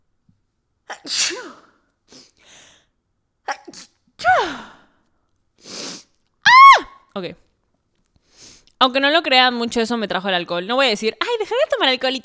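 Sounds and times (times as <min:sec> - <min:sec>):
person sneezing: 0:00.9 - 0:02.4, 0:03.5 - 0:04.8
speech: 0:01.0 - 0:02.2, 0:07.2 - 0:07.5, 0:08.8 - 0:12.2
quick sharp inhale: 0:05.6 - 0:06.1.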